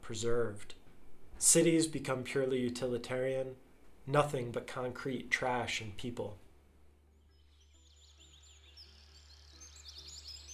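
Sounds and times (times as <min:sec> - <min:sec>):
speech: 0:00.1 - 0:00.8, 0:01.4 - 0:06.4
birds chirping and tweeting: 0:07.1 - 0:10.5.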